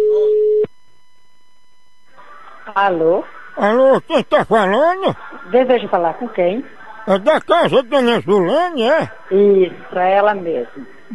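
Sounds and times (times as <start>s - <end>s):
telephone call tone single steady electronic beep: 0.0s - 0.7s
speech: 2.8s - 11.1s
laughter: 3.6s - 5.4s, 7.1s - 9.1s.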